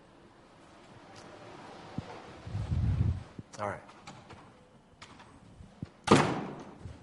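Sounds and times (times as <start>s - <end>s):
speech: 3.6s - 4.0s
door shutting with a thud: 6.0s - 6.8s.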